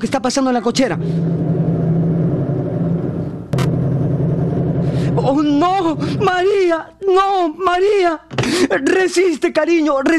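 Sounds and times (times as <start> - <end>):
speech: 0.0 - 1.7, 5.2 - 10.1
car engine idling in a garage: 0.8 - 6.3
sharp clatter: 0.8 - 6.3.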